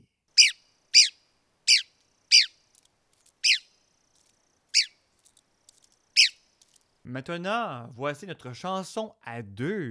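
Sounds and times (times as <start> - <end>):
sharp harmonic bird call: 0.4 - 2.6, 3.4 - 3.8, 4.7 - 5.0, 6.1 - 6.5
speech: 7.1 - 9.9.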